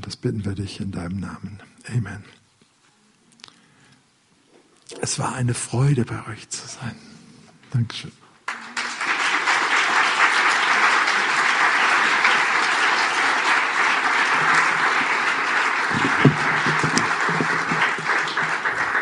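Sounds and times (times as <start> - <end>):
speech: 0.1 - 2.4, 5.0 - 7.1, 7.7 - 8.2
audience applause: 8.5 - 19.0.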